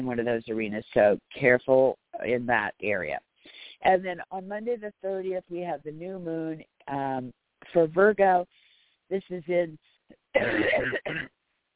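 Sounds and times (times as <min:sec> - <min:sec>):
speech: 0:00.0 - 0:11.4
harsh rasping painful cough: 0:10.4 - 0:11.4.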